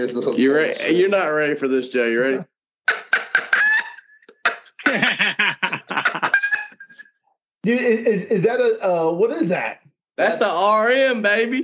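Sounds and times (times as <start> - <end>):
speech: 0.0 - 2.5, 4.9 - 5.2, 7.6 - 11.6
person imitating a turkey gobble and chicken clucks: 2.9 - 4.9
laughter: 3.1 - 8.6.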